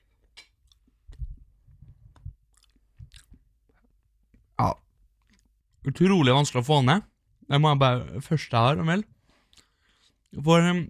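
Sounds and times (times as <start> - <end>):
chewing rice coated in a smoky Asian-style sauce: 0.0 - 4.5, 5.2 - 5.5
speech: 4.6 - 4.8, 5.8 - 9.1, 10.3 - 10.8.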